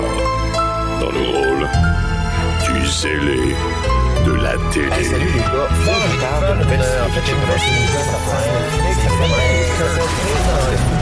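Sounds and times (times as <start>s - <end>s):
loud busy musical jingle of a programme's theme tune: 0.0s - 10.9s
speech: 1.0s - 10.9s
cat meowing: 5.7s - 6.6s, 7.2s - 10.6s.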